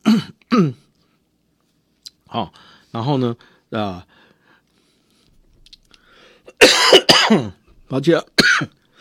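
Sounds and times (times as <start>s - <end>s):
harsh cough: 0.0s - 0.8s, 6.5s - 7.6s, 8.4s - 8.8s
speech: 0.2s - 0.8s, 2.3s - 4.2s, 6.6s - 8.8s.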